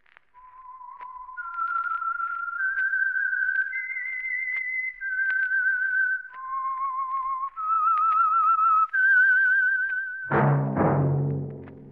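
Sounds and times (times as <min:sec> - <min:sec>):
slow whistled theme melody: 0:00.3 - 0:11.9.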